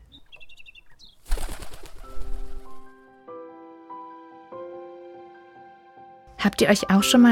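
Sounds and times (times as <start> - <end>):
high bird chirps: 0.0 - 3.1
blackbird fluttering wingbeats: 1.2 - 3.0
soft sustained musical tones: 1.9 - 7.2
speech: 6.4 - 7.2.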